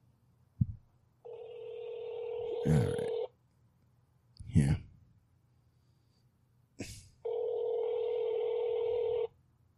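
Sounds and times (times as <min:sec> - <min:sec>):
outgoing phone call ringing tone: 0:01.2 - 0:03.4, 0:07.2 - 0:09.4.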